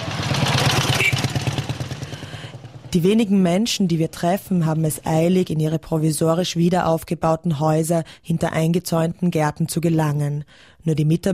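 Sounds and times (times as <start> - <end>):
motorcycle with a sidecar riding past on a dusty town street: 0.0 - 4.8
speech: 2.9 - 11.3.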